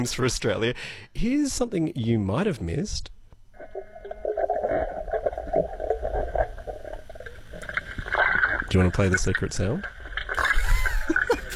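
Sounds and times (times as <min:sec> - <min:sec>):
speech: 0:00.0 - 0:03.2, 0:08.7 - 0:10.5
water sloshing from a man doing push-ups underwater: 0:03.6 - 0:11.5.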